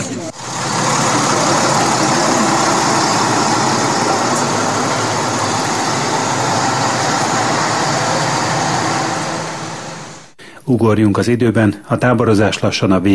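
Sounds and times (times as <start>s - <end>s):
bus engine idling: 0.0s - 10.4s
speech: 10.7s - 13.1s.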